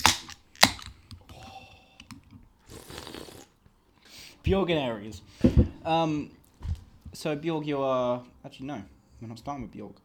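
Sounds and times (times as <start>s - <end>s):
drink can cracking open: 0.0s - 3.5s
soft hissing fizz from a drink can: 1.2s - 4.4s
speech: 4.4s - 6.4s, 7.2s - 10.0s.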